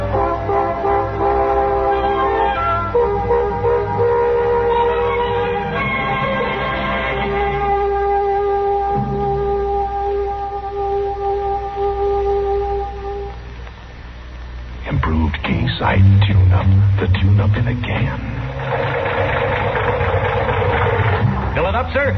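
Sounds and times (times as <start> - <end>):
steady hiss of noise: 0.0 - 22.1
tonal hum: 0.0 - 22.1
car engine sputtering and idling roughly: 18.6 - 21.2.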